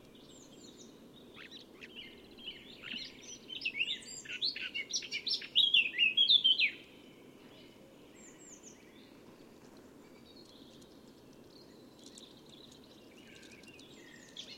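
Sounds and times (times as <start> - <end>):
Eurasian blackcap Sylvia atricapilla warbling song: 0.0 - 6.9, 10.0 - 14.5
faint chirps: 0.0 - 14.5
steady low background noise: 0.0 - 14.5.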